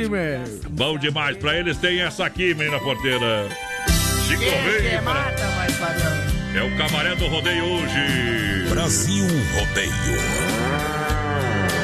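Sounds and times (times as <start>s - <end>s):
speech: 0.0s - 11.0s
bull mooing: 9.9s - 11.8s.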